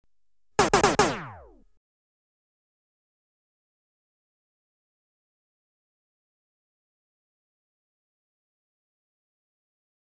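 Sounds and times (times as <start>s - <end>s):
electronically generated variable velocity gun shot bursts: 0.6s - 1.6s.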